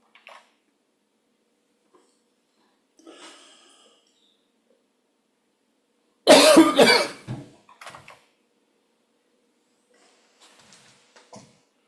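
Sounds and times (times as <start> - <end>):
person coughing in a harsh fit: 6.3 - 7.3.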